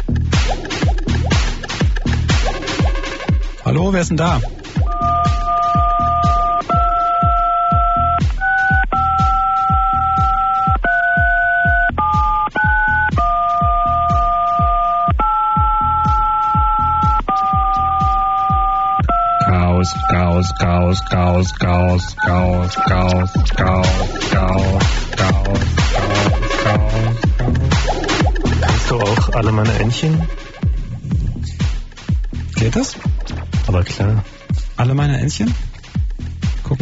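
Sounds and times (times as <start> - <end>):
thumping beat: 0.0 - 36.7
speech: 3.7 - 4.6
telephone keypad DTMF tones playing a tune: 4.8 - 26.8.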